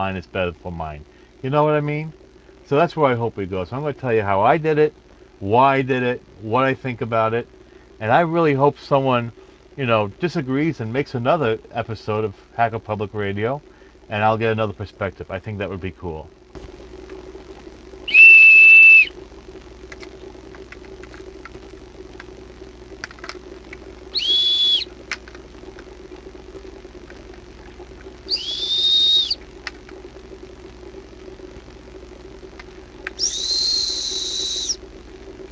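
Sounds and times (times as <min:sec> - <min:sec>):
speech: 0:00.0 - 0:16.8
low constant hum: 0:00.0 - 0:35.4
high steady whistles played as a demonstration: 0:18.0 - 0:19.2, 0:24.1 - 0:25.0, 0:28.3 - 0:29.4, 0:33.2 - 0:34.8.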